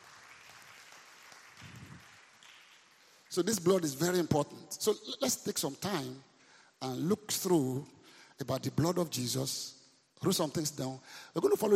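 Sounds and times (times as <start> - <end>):
audience clapping hands: 0.0 - 3.6
speech: 3.3 - 11.7.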